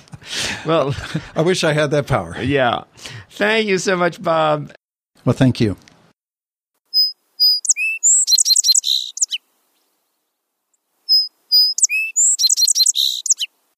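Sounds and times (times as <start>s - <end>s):
speech: 0.6s - 5.9s
song sparrow singing: 6.9s - 10.0s, 11.1s - 13.5s.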